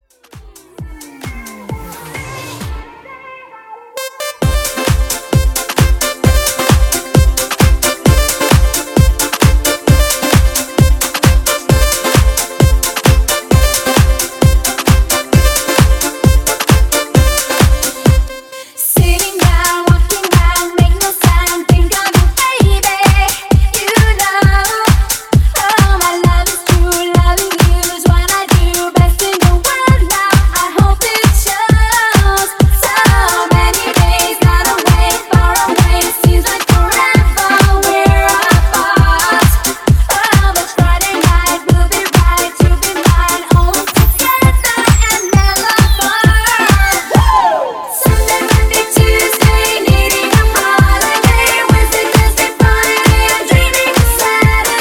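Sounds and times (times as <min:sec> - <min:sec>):
90s disco drum beat at 132 BPM: 0:00.0 - 0:02.9, 0:04.4 - 0:18.3, 0:19.0 - 0:54.7.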